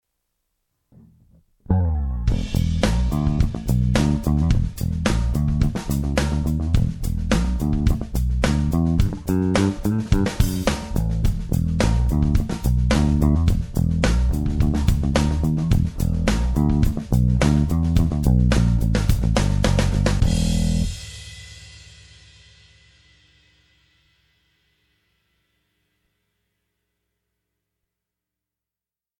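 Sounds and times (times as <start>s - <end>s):
Epiphone Thunderbird IV bass guitar groove: 0.9s - 21.2s.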